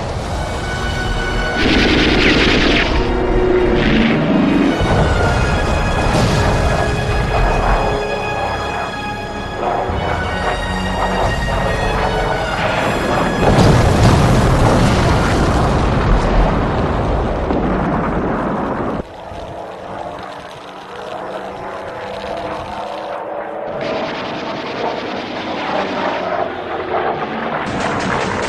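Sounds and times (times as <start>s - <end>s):
explosions: 0.0s - 8.0s, 11.2s - 19.4s, 23.7s - 26.1s
droning engine-like roar: 0.0s - 28.4s
anti-aircraft gunfire: 1.6s - 8.9s, 9.6s - 28.4s.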